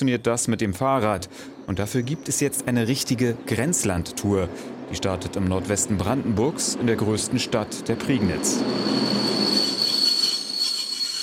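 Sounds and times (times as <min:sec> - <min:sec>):
speech: 0:00.0 - 0:09.7
rumble of rolling railcars: 0:00.5 - 0:11.2
train wheels squealing at a train station: 0:07.0 - 0:11.2.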